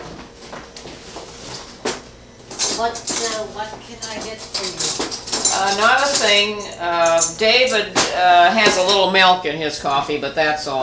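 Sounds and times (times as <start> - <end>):
speech: 2.8 - 10.8
cutlery clinking as a spoon is fetched for coffee: 4.0 - 9.1.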